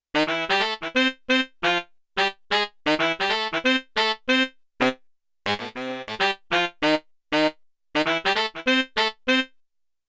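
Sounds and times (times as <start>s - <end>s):
saxophone riff on a Yamaha TX16W sampler: 0.2s - 9.6s.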